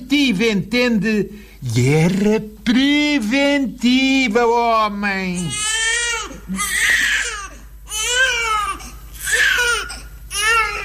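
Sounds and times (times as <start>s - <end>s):
faint low hum: 0.0s - 10.8s
speech: 0.1s - 5.7s, 6.5s - 6.9s
newborn baby crying on arrival at a maternity ward: 5.4s - 10.8s.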